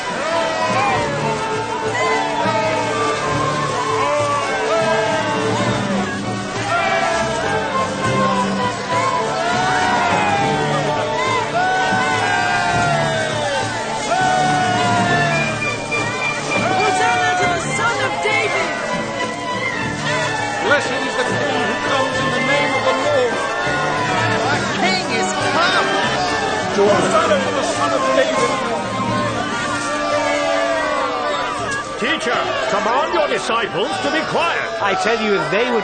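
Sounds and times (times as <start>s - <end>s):
large crowd cheering and shouting in joyful whoops and calls: 0.0s - 35.8s
speech: 35.0s - 35.8s.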